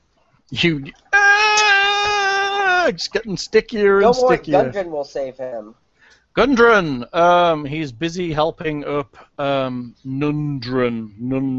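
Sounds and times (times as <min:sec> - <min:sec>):
speech: 0:00.5 - 0:01.0, 0:02.9 - 0:05.8, 0:06.4 - 0:11.5
voice imitating a struggling whining toddler: 0:01.1 - 0:02.9.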